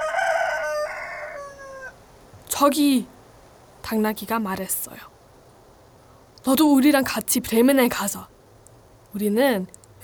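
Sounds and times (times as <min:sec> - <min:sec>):
old rooster crowing on a tall post by a village entrance: 0:00.0 - 0:02.0
speech: 0:02.6 - 0:03.2, 0:03.8 - 0:05.1, 0:06.4 - 0:08.4, 0:09.1 - 0:09.8.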